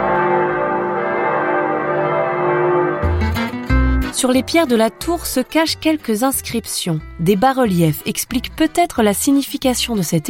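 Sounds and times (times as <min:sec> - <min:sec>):
church bells ringing: 0:00.0 - 0:05.3
speech: 0:04.2 - 0:10.2.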